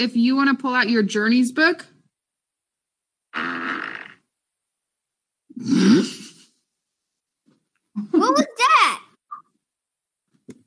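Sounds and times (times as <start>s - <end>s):
speech: 0.0s - 1.9s, 5.6s - 6.2s, 8.0s - 8.7s
farts: 3.3s - 4.3s.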